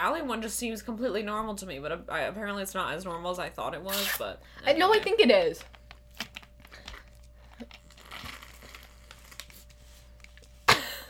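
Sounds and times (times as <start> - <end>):
speech: 0.0 - 5.8
plastic juice pouch crinkling: 5.6 - 10.6.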